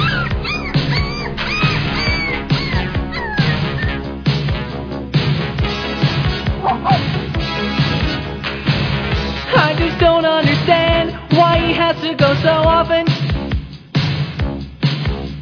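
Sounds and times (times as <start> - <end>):
dog barking and yipping: 0.0 - 4.0, 6.5 - 7.2
dense continuous sound: 0.0 - 15.2.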